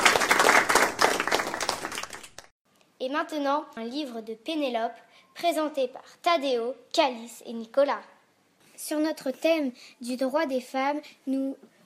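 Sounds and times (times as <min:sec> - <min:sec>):
audience applause: 0:00.0 - 0:02.5
speech: 0:03.2 - 0:08.1, 0:08.8 - 0:11.7.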